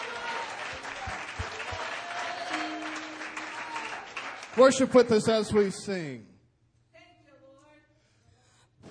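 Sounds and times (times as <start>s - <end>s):
audience applauding in praise: 0.0s - 5.7s
sustained tones: 2.5s - 5.0s
speech: 4.6s - 6.3s.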